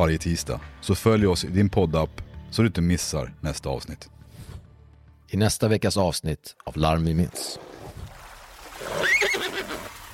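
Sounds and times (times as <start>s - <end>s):
speech: 0.0s - 4.2s, 5.3s - 7.7s
faint splashing of lake water: 7.2s - 10.1s
horse stuck in a lake whinnying: 8.8s - 10.0s.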